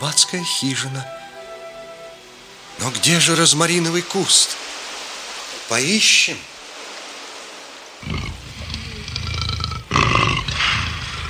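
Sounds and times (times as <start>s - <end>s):
speech: 0.0s - 1.2s, 2.8s - 4.6s, 5.7s - 6.5s
lion roaring: 8.0s - 11.2s.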